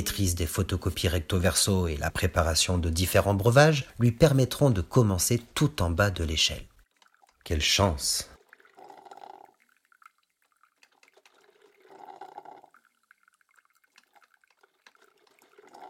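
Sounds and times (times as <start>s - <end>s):
speech: 0.0s - 6.7s, 7.4s - 8.3s
coffee machine water dripping: 0.0s - 15.8s
coffee machine gurgling as it draws up its last drops of water: 7.0s - 15.8s.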